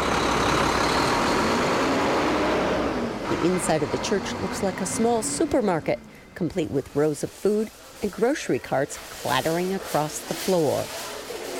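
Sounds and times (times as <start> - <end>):
semi-truck engine idling: 0.0 - 6.8
speech: 3.3 - 11.1.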